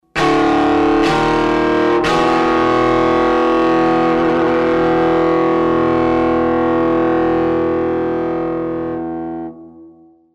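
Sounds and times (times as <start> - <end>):
overdriven electric guitar: 0.0 - 10.3.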